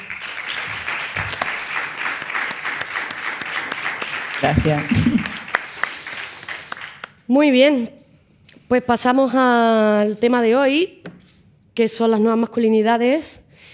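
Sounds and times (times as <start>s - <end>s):
audience applause: 0.0s - 7.1s
speech: 4.4s - 5.4s, 7.3s - 8.0s, 8.7s - 11.1s, 11.8s - 13.4s.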